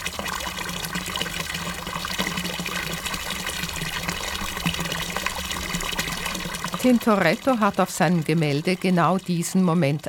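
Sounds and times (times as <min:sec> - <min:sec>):
water gushing out of rock: 0:00.0 - 0:10.0
speech: 0:06.8 - 0:10.0.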